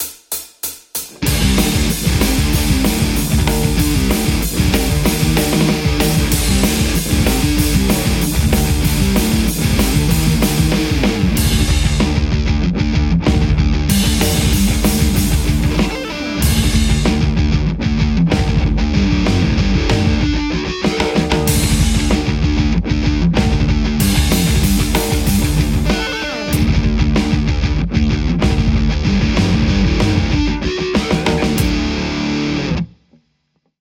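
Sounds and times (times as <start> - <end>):
Stratocaster electric guitar: 1.1 - 33.0.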